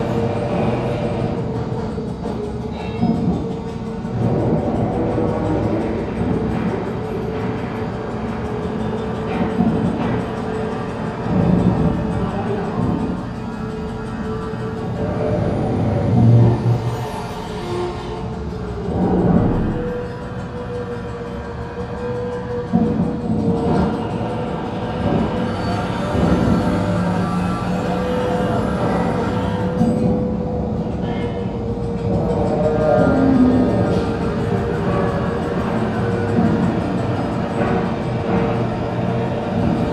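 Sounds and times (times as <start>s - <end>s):
assembly work in underground construction: 0.0s - 39.9s.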